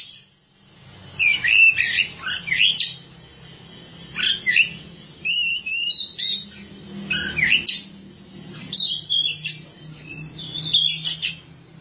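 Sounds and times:
Oriental magpie-robin singing: 1.2s - 3.1s, 4.1s - 11.5s.

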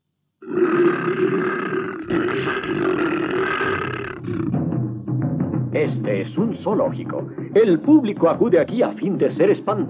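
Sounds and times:
cartoon lion roaring: 0.4s - 4.6s
speech: 5.8s - 9.8s.

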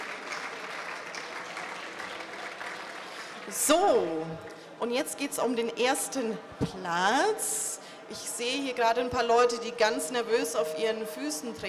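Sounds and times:
audience applause at an award ceremony: 0.0s - 3.6s
speech: 3.5s - 11.6s.

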